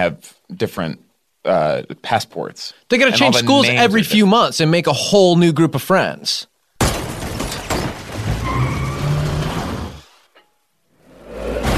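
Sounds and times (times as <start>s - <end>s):
speech: 0.0s - 7.0s
car crashing into water with churning splash: 6.8s - 10.2s
car tyres skidding: 7.1s - 10.4s.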